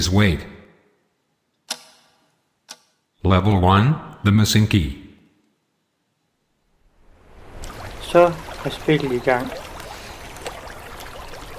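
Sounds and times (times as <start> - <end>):
speech: 0.0 - 0.5, 3.2 - 5.0, 8.1 - 9.7
video game water ambience: 6.6 - 11.5.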